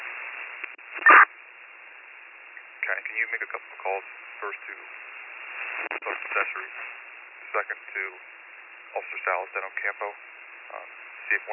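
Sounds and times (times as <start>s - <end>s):
thin narrow-band radio static hiss: 0.0s - 11.5s
speech: 3.2s - 5.2s, 5.9s - 11.5s.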